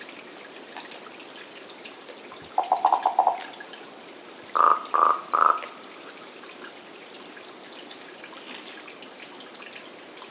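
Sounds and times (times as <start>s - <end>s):
faint background hiss: 0.0s - 10.2s
Corvus corax common raven ringing harmonic calls: 2.6s - 3.5s, 4.6s - 5.7s.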